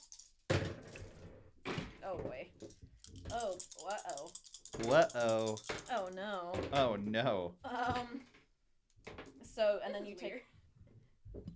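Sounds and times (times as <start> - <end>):
several dice clattering and tumbling across a hard surface: 0.0 - 1.2, 2.6 - 6.2
speech: 2.1 - 8.3, 9.6 - 10.5.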